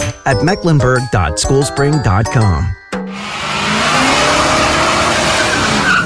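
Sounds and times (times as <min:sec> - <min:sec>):
speech: 0:00.2 - 0:03.4
car engine roaring during a burnout: 0:03.1 - 0:06.0
car tires squealing and hissing during a burnout: 0:03.1 - 0:06.0.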